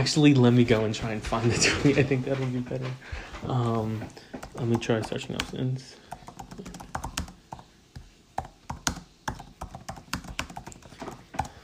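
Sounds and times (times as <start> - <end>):
speech: 0.0 - 6.0
typing on a computer keyboard: 4.4 - 11.6.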